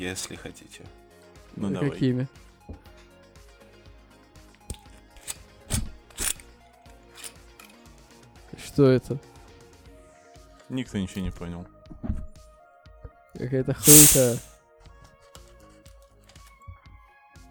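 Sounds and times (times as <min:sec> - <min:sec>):
speech: 0:00.0 - 0:01.0, 0:01.6 - 0:02.9, 0:08.8 - 0:09.3, 0:10.7 - 0:12.2, 0:13.4 - 0:14.5
faint steady musical background: 0:00.0 - 0:06.4
whisky bottle cap twisted open: 0:13.8 - 0:14.4.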